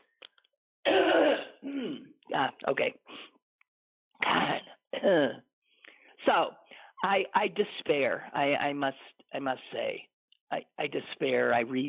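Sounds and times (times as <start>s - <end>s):
person clearing throat from allergy-season irritation: 0.9s - 2.1s, 4.2s - 5.4s
person coughing from allergy-season irritation: 0.9s - 2.1s, 4.2s - 5.4s
speech: 1.6s - 3.3s, 4.2s - 5.4s, 6.2s - 11.8s.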